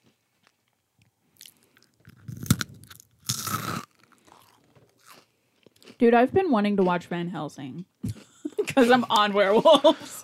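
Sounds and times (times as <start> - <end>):
person biting and chewing crispy food: 1.4 - 6.0
speech: 6.0 - 7.9, 8.8 - 10.2.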